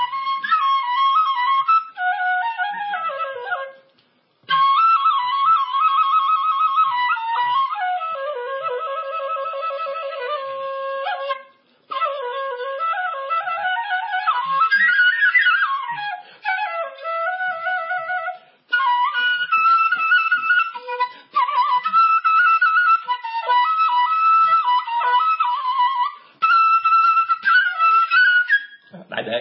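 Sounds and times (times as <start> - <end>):
Vietnamese bamboo flute sáo melody: 0.0 - 29.0.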